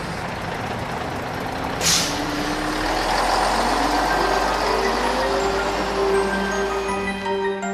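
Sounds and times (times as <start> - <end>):
large bus engine rumbling: 0.0 - 7.6
air brakes hissing: 1.8 - 2.6.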